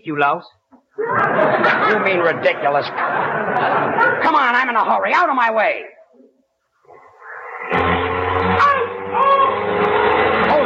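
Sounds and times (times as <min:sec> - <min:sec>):
speech: 0:00.0 - 0:06.0
laughter: 0:01.0 - 0:04.4
car engine starting and revving as it pulls away: 0:07.4 - 0:10.6.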